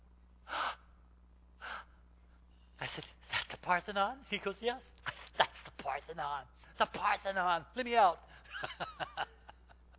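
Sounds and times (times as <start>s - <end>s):
person gasping inhales: 0.5s - 0.9s
speech: 3.0s - 4.9s, 5.9s - 9.1s
laughter: 8.4s - 9.9s.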